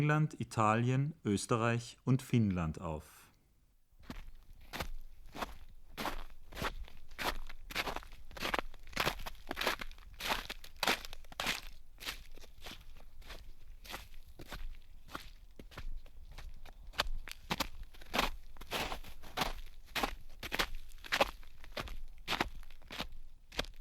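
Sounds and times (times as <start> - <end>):
speech: 0.0 - 3.2
footsteps of many people walking on a gritty or gravelly surface: 4.1 - 23.8.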